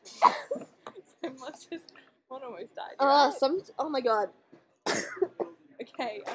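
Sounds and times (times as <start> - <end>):
person coughing after choking on water: 0.1 - 0.7, 4.9 - 5.6
speech: 2.4 - 4.4, 6.0 - 6.3.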